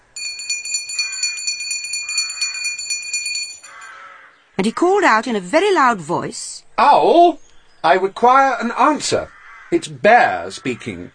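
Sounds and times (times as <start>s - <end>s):
doorbell rung by pulling a bell rope: 0.0s - 4.0s
speech: 4.6s - 11.1s.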